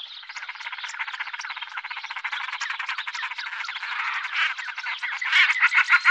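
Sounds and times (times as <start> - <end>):
Common shelduck cackling calls: 3.5 - 6.0.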